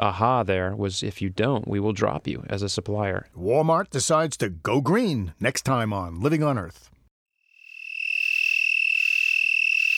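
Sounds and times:
speech: 0:00.0 - 0:06.9
broad-winged tree cricket Oecanthus latipennis trilling: 0:07.4 - 0:09.9.

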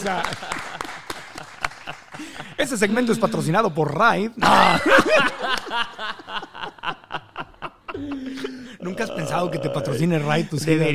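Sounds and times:
speech: 0:00.0 - 0:00.6, 0:01.9 - 0:07.0, 0:08.0 - 0:10.9
laughter: 0:00.0 - 0:03.6, 0:04.4 - 0:10.5
applause of a few hands clapping: 0:00.0 - 0:04.2, 0:05.3 - 0:06.0.

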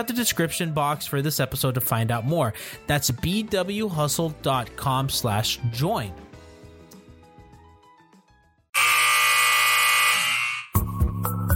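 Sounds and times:
speech: 0:00.0 - 0:06.3
quieter musical passage: 0:00.0 - 0:08.8, 0:10.7 - 0:11.5
loud harsh basketball buzzer: 0:08.8 - 0:10.8.

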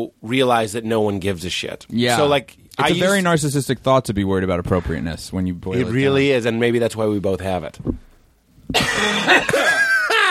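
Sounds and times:
speech: 0:00.0 - 0:08.1, 0:08.7 - 0:09.7
person coughing: 0:08.7 - 0:10.2.

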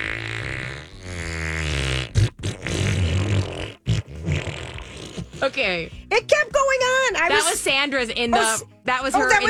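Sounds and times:
voice imitating a long fart: 0:00.0 - 0:06.4
speech: 0:05.4 - 0:09.4.

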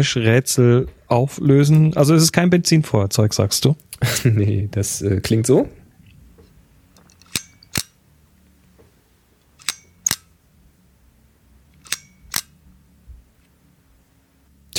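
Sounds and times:
speech: 0:00.0 - 0:05.8
medium-format camera shutter clicks: 0:11.8 - 0:12.6.

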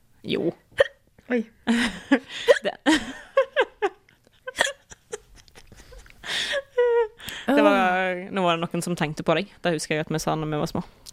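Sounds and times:
speech: 0:00.2 - 0:00.6, 0:01.3 - 0:03.2, 0:08.6 - 0:11.1
hiccups: 0:00.8 - 0:01.0
laughter: 0:01.7 - 0:07.9.

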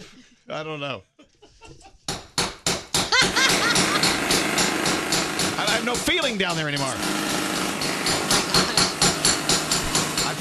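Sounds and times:
speech: 0:00.5 - 0:01.1, 0:05.6 - 0:07.4
laughter: 0:01.2 - 0:02.1, 0:03.1 - 0:04.4
jackhammer pounding: 0:03.1 - 0:10.3.

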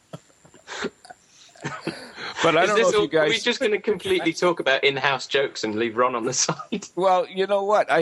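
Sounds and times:
person sneezing: 0:00.6 - 0:02.5
breaths: 0:00.7 - 0:02.5
laughter: 0:01.6 - 0:04.7, 0:06.2 - 0:07.0
speech: 0:02.4 - 0:07.9.

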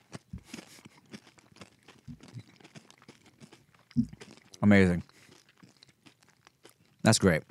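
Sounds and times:
crunching and chewing Doritos tortilla chips: 0:00.0 - 0:07.4
speech: 0:04.6 - 0:05.1, 0:07.1 - 0:07.4.

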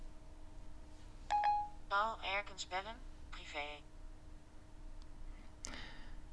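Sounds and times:
short electronic beep of an iPhone: 0:01.3 - 0:01.7
iPhone outgoing call tone: 0:01.3 - 0:01.8.

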